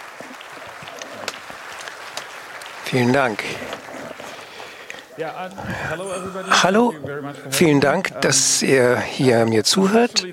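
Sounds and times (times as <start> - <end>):
audience applause welcoming a speaker: 0.0 - 6.9
speech: 2.9 - 3.9, 5.2 - 10.3.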